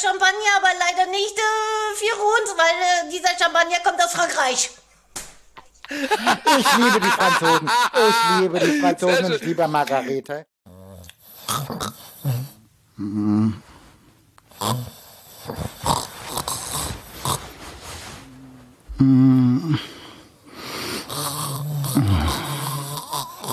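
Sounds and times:
speech: 0.0 - 4.8, 5.9 - 10.5, 11.5 - 12.4, 13.0 - 13.7, 14.6 - 16.0, 19.0 - 20.0
laughter: 5.8 - 10.3
person snoring loudly and irregularly: 10.7 - 13.9, 14.5 - 23.5.

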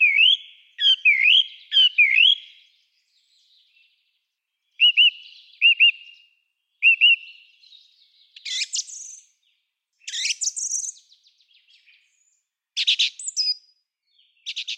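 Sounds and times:
song thrush song with clear whistled repeated phrases: 0.0 - 3.5, 4.7 - 9.3, 10.0 - 12.2, 12.8 - 13.7.

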